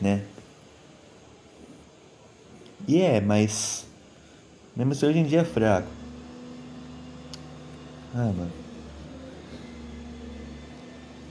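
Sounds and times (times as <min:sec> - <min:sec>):
speech: 0:00.0 - 0:00.3, 0:02.9 - 0:03.9, 0:04.8 - 0:06.0, 0:08.1 - 0:08.6
truck rumbling in a city-centre street: 0:05.0 - 0:11.2.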